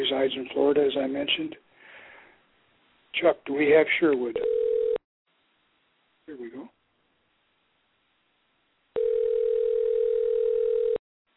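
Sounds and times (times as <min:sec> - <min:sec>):
speech: 0:00.0 - 0:01.7, 0:03.1 - 0:04.6, 0:06.3 - 0:06.8
telephone dial tone while a call is dialed: 0:04.4 - 0:05.0, 0:09.0 - 0:11.0.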